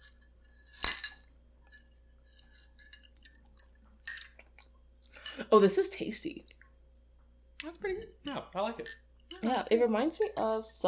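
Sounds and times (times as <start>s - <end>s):
glasses clinking in a toast: 0.0s - 4.4s, 8.0s - 9.6s
speech: 5.5s - 6.6s, 7.6s - 10.8s.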